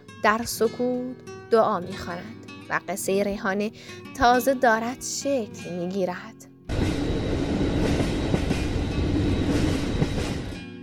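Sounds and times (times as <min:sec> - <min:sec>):
speech: 0:00.2 - 0:06.4
sustained harmonic hum: 0:06.7 - 0:10.6
train rolling on rails: 0:06.7 - 0:10.7.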